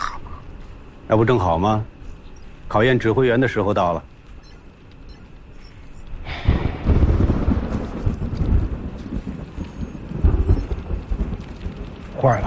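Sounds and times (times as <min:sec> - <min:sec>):
speech: 0:01.1 - 0:01.9, 0:02.7 - 0:04.1, 0:12.2 - 0:12.4
deep rumbles of thunder: 0:05.4 - 0:12.4
heavy rain pouring at night: 0:06.1 - 0:12.4.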